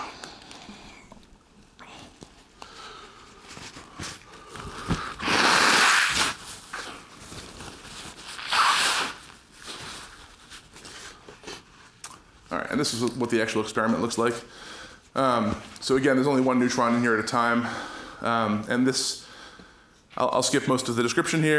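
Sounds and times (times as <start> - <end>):
faint rustling and shuffling: 0.0 - 5.2, 6.2 - 8.5, 9.2 - 17.6
person blowing their nose: 4.9 - 7.0, 8.4 - 9.8
speech: 12.8 - 19.2, 20.2 - 21.5.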